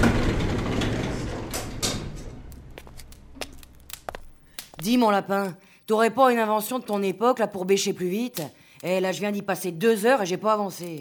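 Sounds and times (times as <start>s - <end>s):
elevator doors sliding open: 0.0s - 3.5s
sharp clicks and knocks: 0.0s - 4.8s
speech: 4.8s - 10.9s.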